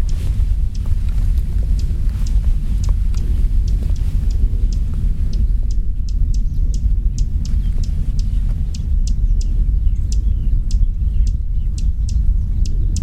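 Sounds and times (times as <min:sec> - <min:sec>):
dusky warbler Phylloscopus fuscatus clicking tack calls: 0:00.0 - 0:13.0
steady low rumble: 0:00.0 - 0:13.0.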